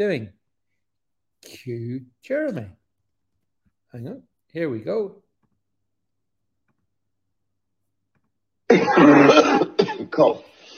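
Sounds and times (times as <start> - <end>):
speech: 0.0 - 0.4, 1.4 - 2.8, 3.9 - 5.2, 10.2 - 10.5
person coughing harshly: 8.7 - 10.4.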